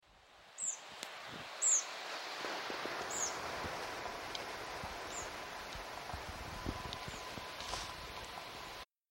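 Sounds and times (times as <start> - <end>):
tree pipit singing: 0.6 - 0.9, 1.6 - 1.9, 2.9 - 8.8.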